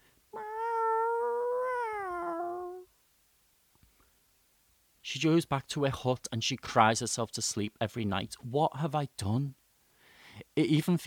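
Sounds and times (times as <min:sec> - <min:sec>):
long drawn-out loud meow from a cat carried away in a box: 0:00.4 - 0:02.9
speech: 0:05.1 - 0:09.6, 0:10.6 - 0:11.0.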